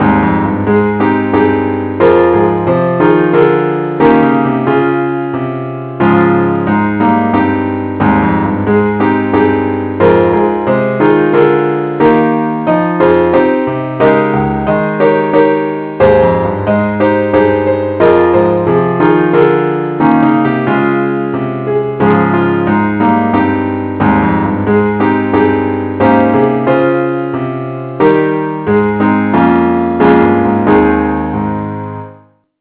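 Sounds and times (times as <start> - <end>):
keyboard music in A flat major: 0.0 - 32.2.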